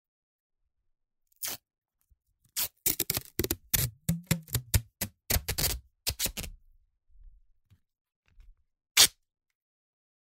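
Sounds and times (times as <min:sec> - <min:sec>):
masking tape being pulled off its roll: 0:02.6 - 0:06.5, 0:09.0 - 0:09.2.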